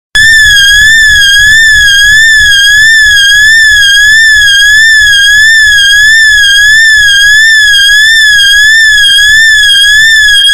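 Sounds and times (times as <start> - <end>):
evacuation siren: 0.2 - 10.5.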